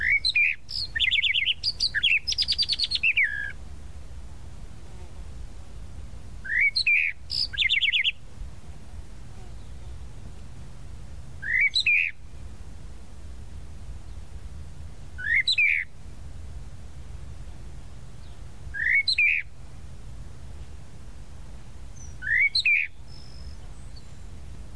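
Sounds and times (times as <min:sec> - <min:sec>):
tropical mockingbird song: 0:00.0 - 0:03.6, 0:06.4 - 0:08.2, 0:11.4 - 0:12.2, 0:15.2 - 0:15.9, 0:18.2 - 0:19.5, 0:21.9 - 0:24.3
low background rumble: 0:00.0 - 0:24.7.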